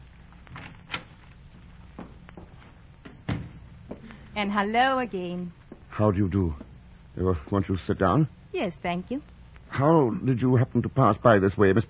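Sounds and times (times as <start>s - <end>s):
door closing thump: 3.0s - 3.7s
speech: 4.4s - 11.8s.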